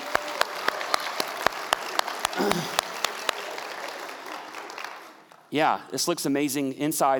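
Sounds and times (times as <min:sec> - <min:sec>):
sharp, evenly spaced claps: 0:00.0 - 0:05.4
audience applause: 0:00.0 - 0:05.5
speech: 0:05.5 - 0:07.1.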